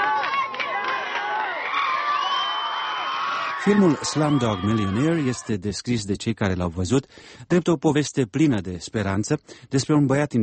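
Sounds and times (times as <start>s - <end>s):
large crowd in Mumbai India cheering and shouting at news of a film winning: 0.0s - 5.6s
speech: 3.6s - 10.4s.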